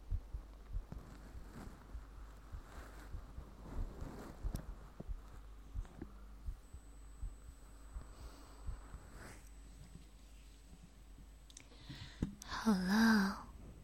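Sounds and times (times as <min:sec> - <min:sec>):
person's heartbeat during a medical check-up: 0:00.0 - 0:10.1
faint high-pitched whine: 0:00.0 - 0:13.8
speech: 0:12.7 - 0:13.4.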